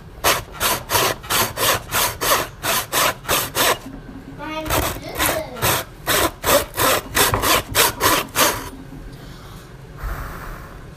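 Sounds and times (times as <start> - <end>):
hand saw cutting through wood in back-and-forth strokes: 0.2 - 3.9, 4.6 - 8.7.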